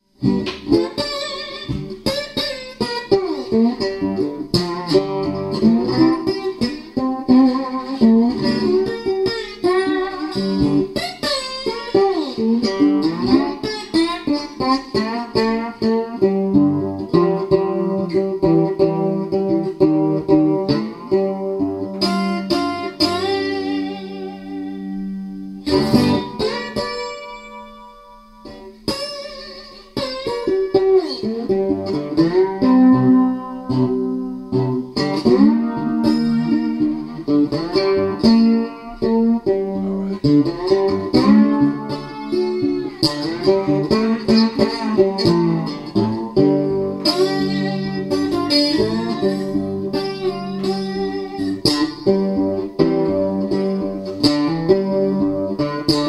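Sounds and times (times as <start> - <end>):
musical jam: 0.2 - 56.0.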